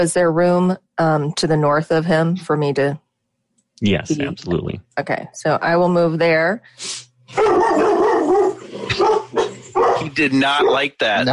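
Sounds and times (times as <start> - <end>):
speech: 0.0 - 3.0, 3.8 - 8.0, 10.0 - 11.3
dog barking: 7.3 - 10.9.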